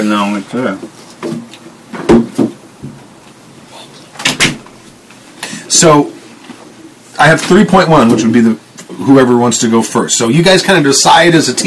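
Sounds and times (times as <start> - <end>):
speech: 0.0 - 1.4, 5.7 - 6.2, 7.2 - 11.6
door being shut: 4.2 - 4.7.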